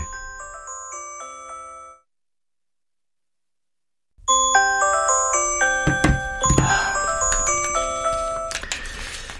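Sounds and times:
work mobile phone ringing with bright melodic ringtone: 0.0 - 2.1, 4.3 - 8.7.

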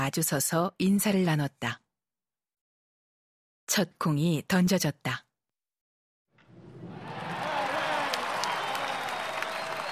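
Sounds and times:
speech: 0.0 - 1.8, 3.7 - 5.2
large stadium crowd at a baseball game cheering: 6.4 - 9.9
scattered shouts in a stadium crowd: 6.8 - 9.9.

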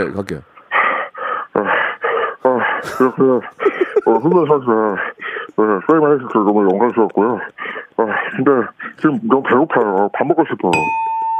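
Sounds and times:
speech: 0.0 - 0.5, 2.8 - 7.6, 8.4 - 11.0
person imitating a fighter's heavy out-of-breath panting: 0.7 - 9.0
laughter: 2.4 - 10.7.

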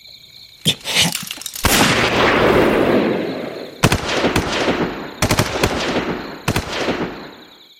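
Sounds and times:
long rumbling echo of gunfire: 1.6 - 7.2
loud gunfire from machine guns and rifles: 1.6 - 7.4.

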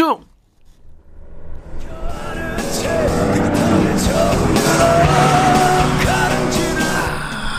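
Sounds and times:
speech: 0.1 - 0.3
steady road and engine noise: 0.5 - 7.5
car passing on the road: 0.6 - 7.5
music drifting out of an open car window: 1.8 - 7.5
male singing voice: 1.9 - 7.5.

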